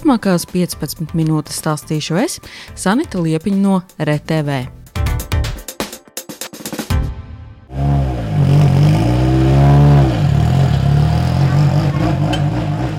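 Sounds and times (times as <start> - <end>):
speech: 0.0 - 4.8
rally car engines revving and roaring in Talsi Latvia: 7.7 - 12.9.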